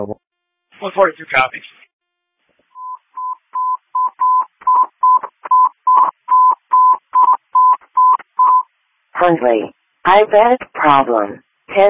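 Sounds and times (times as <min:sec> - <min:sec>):
speech: 0:00.0 - 0:00.2, 0:00.8 - 0:01.8, 0:09.2 - 0:11.8
telephone keypad tones of a dispatcher redialling: 0:02.8 - 0:08.7.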